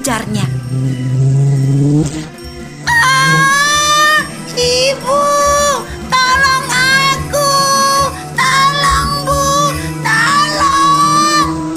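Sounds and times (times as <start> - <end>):
speech: 0.1 - 1.4
girl screaming and shouting for help: 2.9 - 11.6.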